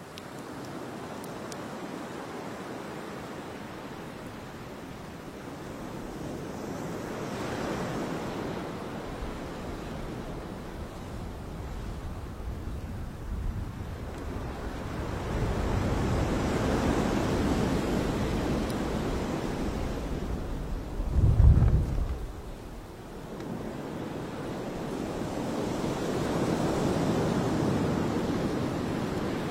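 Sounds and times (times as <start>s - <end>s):
waves breaking and washing up a beach: 0.0s - 29.5s
wind thump on microphone: 21.0s - 22.6s.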